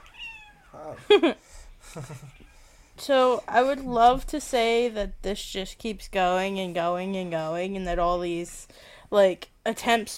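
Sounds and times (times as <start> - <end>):
cat meowing: 0.0 - 1.0
speech: 0.7 - 1.4, 2.0 - 10.1.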